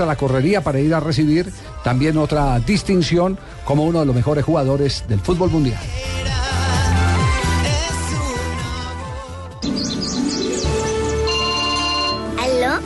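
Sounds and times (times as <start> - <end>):
speech: 0.0 - 6.4
steady musical backing: 0.0 - 12.8
smartphone ringtone signalling an incoming call, chirpy melody with tweeting notes: 9.6 - 12.7.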